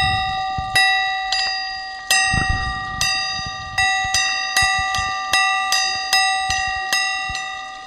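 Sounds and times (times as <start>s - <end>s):
large church bell ringing in quick strikes: 0.0s - 7.8s.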